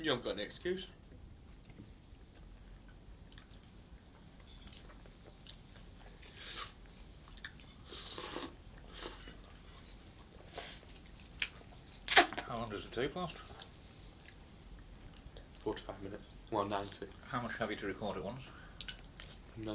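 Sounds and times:
speech: 0.0 - 1.0, 13.0 - 13.6, 15.6 - 18.6, 19.6 - 19.7
low hum: 0.0 - 19.7
slurping tea: 6.3 - 6.8, 7.8 - 9.4.

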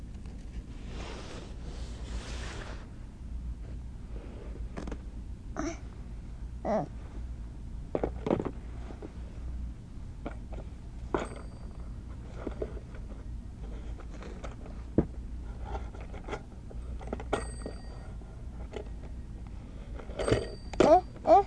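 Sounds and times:
low hum: 0.0 - 21.4
toy telephone ringing in short electronic bursts: 17.3 - 18.1.

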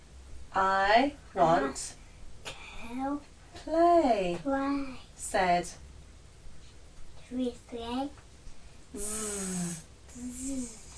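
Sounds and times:
speech: 0.6 - 2.0, 2.9 - 5.8, 7.3 - 8.2, 8.9 - 10.8
person imitating snoring: 9.0 - 10.9.

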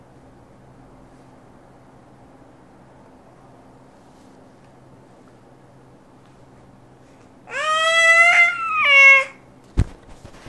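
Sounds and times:
cat meowing: 7.5 - 9.4.

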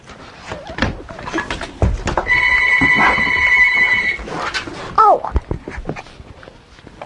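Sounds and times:
clattering and handling noises: 0.0 - 7.0
telephone ringing with electronic trill: 2.3 - 4.3.

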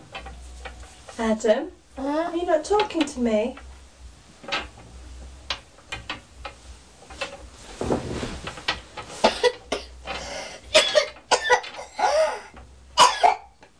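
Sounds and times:
speech: 1.2 - 3.6
person coughing with throat-clearing rasps: 9.2 - 10.0, 10.7 - 13.5.

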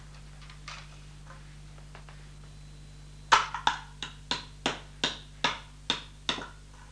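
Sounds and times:
hammer striking a nail while building a small house: 3.4 - 6.5.

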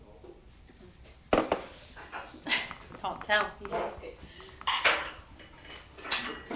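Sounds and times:
bowls clinking as they are handled and set down: 1.5 - 6.5
speech: 3.0 - 4.2.

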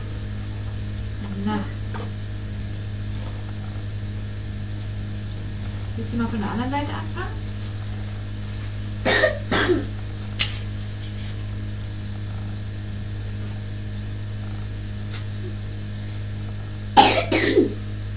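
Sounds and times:
low electrical hum: 0.0 - 18.1
speech: 6.0 - 7.5, 9.7 - 10.0
person coughing: 9.0 - 10.0, 17.0 - 17.8.

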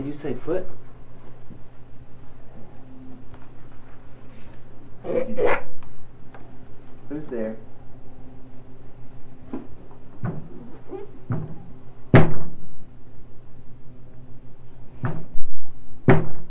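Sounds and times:
speech: 0.0 - 0.9, 5.0 - 5.6, 7.1 - 7.7
hard dull thuds against something solid: 11.3 - 12.7.

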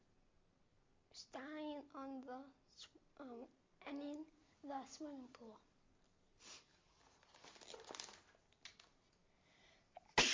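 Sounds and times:
speech: 1.2 - 5.7
soft rustling: 4.3 - 9.1
person sneezing: 10.0 - 10.3.

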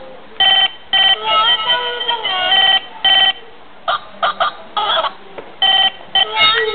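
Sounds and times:
telephone ringing in short bright electronic bursts: 0.4 - 3.4, 5.6 - 6.5.

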